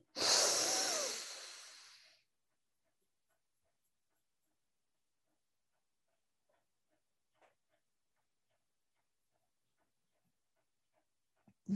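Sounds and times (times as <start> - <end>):
person breathing quickly in and out: 0.0 - 2.2.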